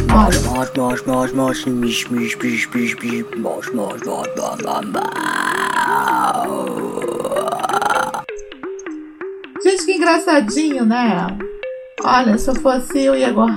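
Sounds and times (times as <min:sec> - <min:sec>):
song with silly croaky vocals over a steady beat: 0:00.0 - 0:08.9
speech: 0:00.2 - 0:06.8, 0:09.8 - 0:13.5.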